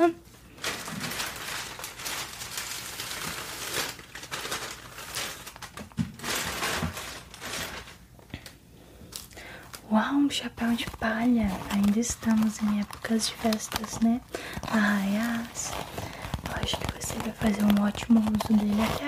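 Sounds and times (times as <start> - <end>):
shopping bag crinkling as something is packed into it: 0.5 - 8.1, 10.4 - 19.0
speech: 10.0 - 16.0, 16.7 - 19.0.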